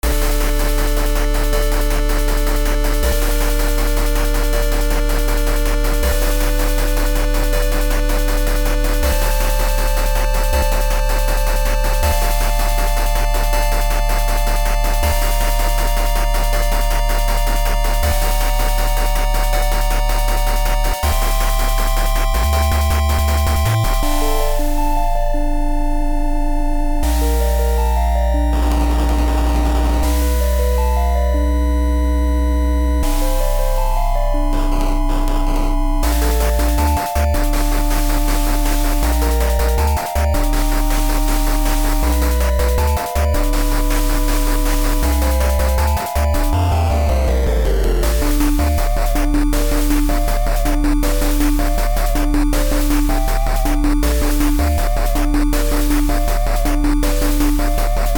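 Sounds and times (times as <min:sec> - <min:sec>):
boss fight game music: 0:00.0 - 0:58.1.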